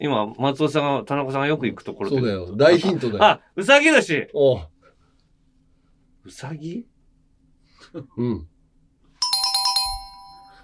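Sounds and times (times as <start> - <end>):
speech: 0.0 - 4.7, 6.3 - 6.9, 7.8 - 8.5
quiz-show correct-answer ding-dong chime: 9.2 - 10.6.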